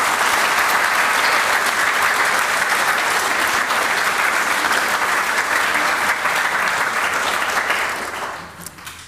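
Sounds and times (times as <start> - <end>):
audience applauding: 0.0 - 9.0.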